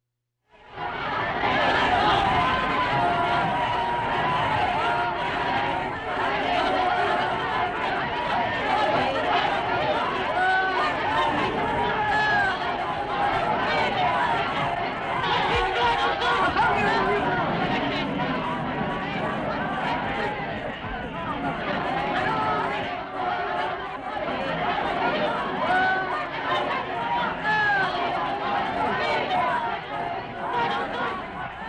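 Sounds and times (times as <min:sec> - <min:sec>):
angry crowd: 0:00.6 - 0:31.6.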